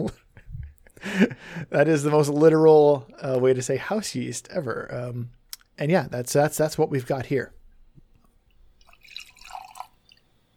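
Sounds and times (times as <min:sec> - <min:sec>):
speech: 0:00.0 - 0:00.2, 0:01.0 - 0:07.6
small pour of beer into a glass: 0:08.7 - 0:10.5.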